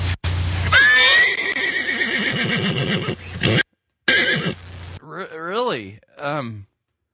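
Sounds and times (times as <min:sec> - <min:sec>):
horse whinnying: 0:00.7 - 0:04.6
horse snorting and breathy nickering: 0:02.1 - 0:04.6.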